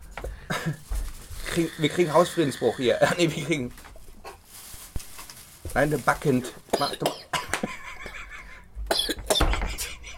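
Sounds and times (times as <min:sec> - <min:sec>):
speech: 0:01.6 - 0:03.9, 0:05.8 - 0:07.2
person coughing: 0:06.7 - 0:07.6, 0:08.9 - 0:09.9
laughter: 0:07.4 - 0:08.7, 0:09.5 - 0:10.1.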